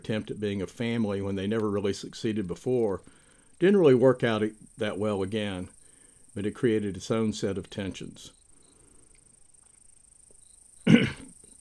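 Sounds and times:
speech: 0:00.0 - 0:05.8, 0:06.4 - 0:08.4
person coughing with rough throat clearing: 0:10.9 - 0:11.4.

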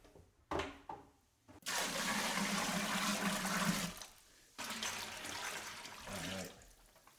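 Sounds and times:
water gushing into a large container holding sugar: 0:01.6 - 0:07.1.

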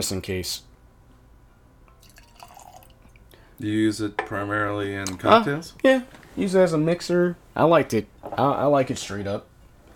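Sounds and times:
speech: 0:00.0 - 0:00.7, 0:03.6 - 0:09.5
100-proof whiskey pouring into a glass: 0:01.9 - 0:03.3.

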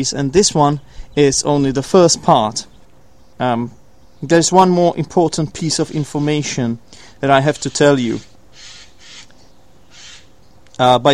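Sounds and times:
speech: 0:00.0 - 0:02.7, 0:03.4 - 0:08.3, 0:10.8 - 0:11.1
harsh raspy bird calls outdoors: 0:00.6 - 0:10.8.

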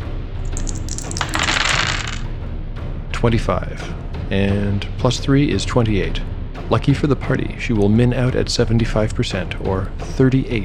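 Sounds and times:
eight-sided dice clattering across a hard tabletop: 0:00.5 - 0:02.2
speech: 0:03.2 - 0:10.6.

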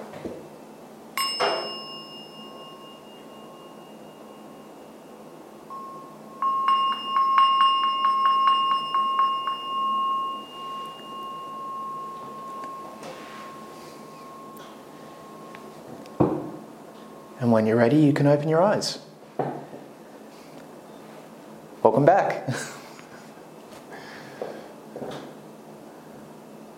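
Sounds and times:
shimmering flurry of lighter gong strokes: 0:01.2 - 0:17.6
speech: 0:17.5 - 0:19.1, 0:21.9 - 0:22.7.

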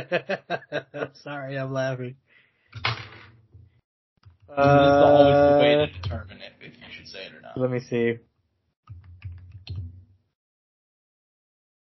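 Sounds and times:
laughter: 0:00.0 - 0:01.3, 0:04.5 - 0:06.0
speech: 0:00.0 - 0:03.1, 0:04.5 - 0:08.3
fast typing on a computer keyboard: 0:08.9 - 0:10.0.

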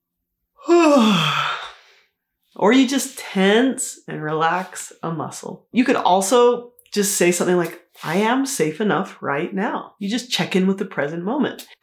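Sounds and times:
long breathy exhale with downward sliding voiced tone: 0:00.6 - 0:02.1
speech: 0:00.8 - 0:01.4, 0:02.6 - 0:11.8.

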